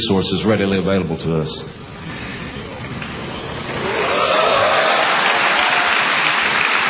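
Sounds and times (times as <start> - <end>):
speech: 0.0 - 1.8
large crowd of National Guard and Reserve soldiers cheering: 2.6 - 6.8.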